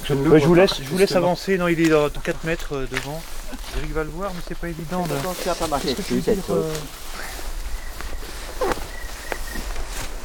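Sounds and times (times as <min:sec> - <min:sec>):
speech: 0:00.1 - 0:07.2
footsteps: 0:01.4 - 0:10.2
wild Eurasian teal whistled calls on a river: 0:06.0 - 0:10.2.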